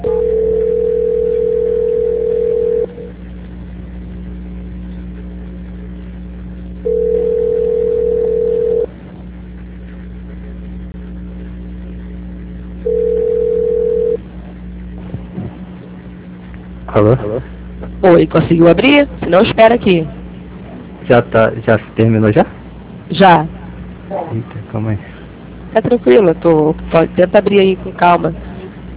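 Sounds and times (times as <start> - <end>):
telephone line tone beeps during a call transfer: 0.0 - 3.1, 6.9 - 8.9, 12.9 - 14.2
low constant hum on a narrow phone line: 0.0 - 28.9
speech: 17.0 - 20.2, 21.1 - 25.1, 25.7 - 28.4.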